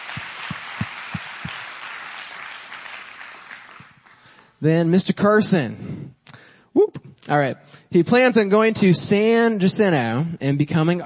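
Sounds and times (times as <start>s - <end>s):
crowd applauding: 0.0s - 4.5s
sharp individual claps: 0.0s - 4.5s
speech: 4.6s - 6.0s, 7.3s - 11.0s.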